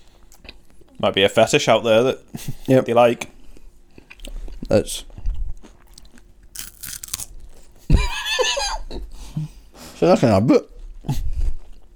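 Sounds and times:
speech: 1.0s - 3.3s, 4.7s - 5.1s, 10.0s - 11.2s
people crunching and chewing crisp Ferrero Rocher chocolates: 5.8s - 7.8s.

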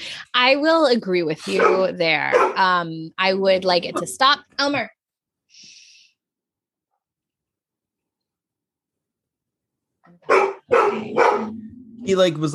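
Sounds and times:
speech: 0.4s - 5.0s, 10.3s - 12.5s
dog barking: 1.5s - 2.6s, 10.2s - 11.7s.

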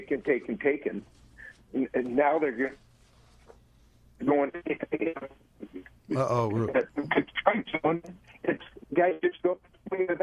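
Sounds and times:
speech: 0.0s - 2.8s, 4.2s - 10.2s
voice through a thin phone-quality cell phone line breaking up: 6.1s - 6.9s.

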